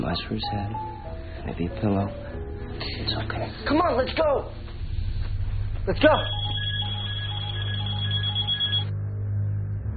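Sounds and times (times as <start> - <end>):
speech: 0.0 - 4.6, 5.8 - 6.4
low hum: 4.6 - 9.9
several telephones trilling around a house: 6.2 - 8.9.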